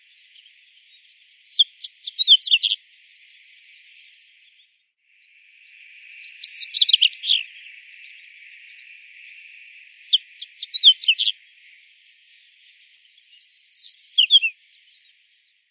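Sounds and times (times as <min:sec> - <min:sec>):
common reed bunting song: 0:00.0 - 0:15.6
faint hiss: 0:00.0 - 0:15.6.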